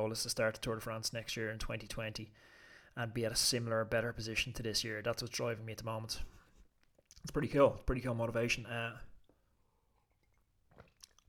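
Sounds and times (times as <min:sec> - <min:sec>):
speech: 0:00.0 - 0:06.4, 0:07.2 - 0:09.1
wet mouth noises: 0:06.8 - 0:07.3, 0:10.0 - 0:11.2
person sipping tea: 0:09.2 - 0:11.2.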